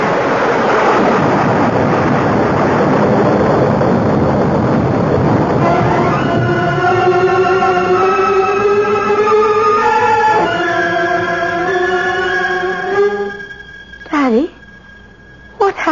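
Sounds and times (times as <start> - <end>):
loud thunder crash from lightning strike: 0.0 - 15.6
bright ringing tonal hum: 5.2 - 15.8.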